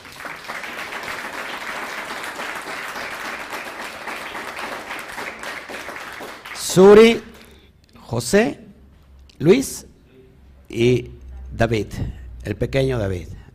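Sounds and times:
audience applause for visiting family: 0.0 - 7.1
speech: 6.8 - 7.3, 8.1 - 8.6, 9.4 - 9.9, 10.7 - 13.4.

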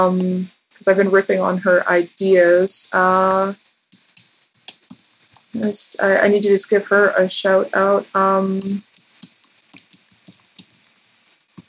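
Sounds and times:
speech: 0.0 - 3.6, 5.5 - 8.9
computer keyboard typing taps: 2.5 - 5.9, 8.5 - 11.6.

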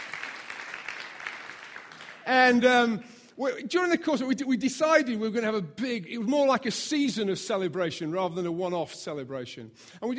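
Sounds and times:
audience applauding: 0.0 - 2.6
speech: 2.3 - 10.1.

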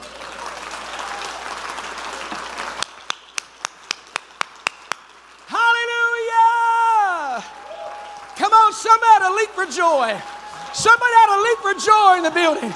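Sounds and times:
sharp evenly spaced claps: 0.0 - 5.5
crowd clapping and cheering: 0.0 - 12.7
speech: 9.4 - 12.7.

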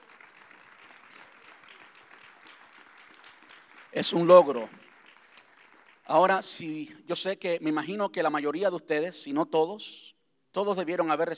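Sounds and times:
sustained applause from a large audience: 0.0 - 6.3
speech: 3.9 - 4.8, 6.1 - 11.3.

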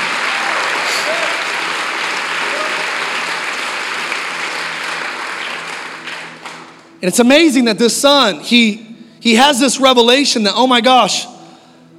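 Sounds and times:
audience applauding with hand claps: 0.0 - 6.9
speech: 7.0 - 11.3.

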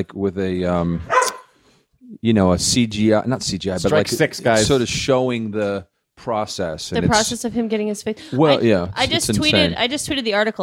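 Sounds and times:
speech: 0.0 - 1.2, 2.2 - 10.6
dog barking: 1.1 - 1.5.

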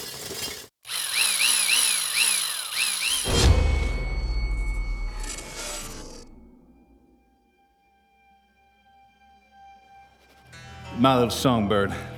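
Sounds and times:
power drill whining and grinding: 0.0 - 6.3
speech: 11.0 - 12.1.

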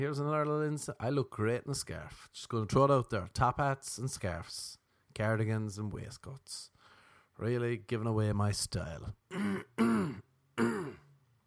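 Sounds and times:
speech: 0.0 - 6.7, 7.4 - 10.2
harsh rasping throat-clearing coughs: 9.3 - 11.1.

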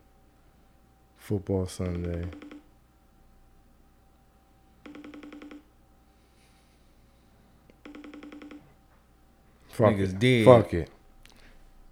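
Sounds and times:
speech: 1.3 - 2.4, 9.8 - 11.0
phone ringing with electronic trill: 1.9 - 2.7, 4.8 - 5.8, 7.8 - 8.9.

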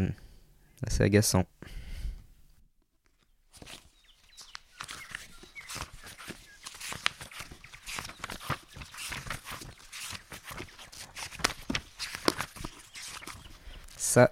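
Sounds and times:
speech: 0.0 - 0.2, 0.8 - 1.8, 14.1 - 14.3
pages of a novel being turned: 3.0 - 14.1.

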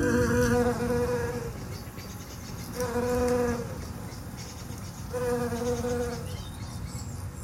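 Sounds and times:
shrill carder bee buzzing among flower beds: 0.0 - 1.6, 2.8 - 3.8, 5.1 - 6.3.

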